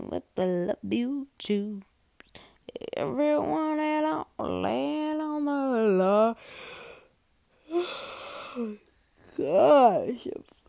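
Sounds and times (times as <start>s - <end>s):
speech: 0.4s - 1.9s, 3.0s - 6.6s, 9.4s - 10.5s
drawn-out yawn from a tired person: 7.6s - 8.8s.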